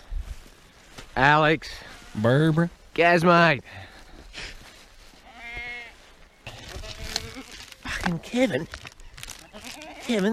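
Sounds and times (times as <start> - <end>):
rough outdoor noise: 0.0 - 10.3
speech: 1.2 - 4.5, 8.1 - 8.9, 10.1 - 10.3
sheep bleating at feeding time: 5.2 - 8.2, 9.5 - 10.3
faint animal noise: 5.2 - 8.4, 9.0 - 10.3.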